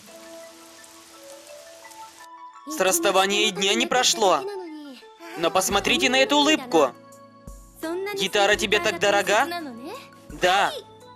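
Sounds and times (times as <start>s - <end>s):
rain falling outside: 0.0s - 3.6s
speech: 2.6s - 4.6s, 5.4s - 7.0s, 8.1s - 9.7s, 10.4s - 10.9s.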